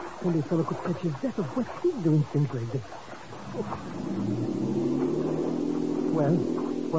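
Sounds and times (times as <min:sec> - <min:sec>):
speech: 0:00.2 - 0:04.6, 0:06.2 - 0:06.9
motorboat engine revving with a throaty drone: 0:03.3 - 0:06.9.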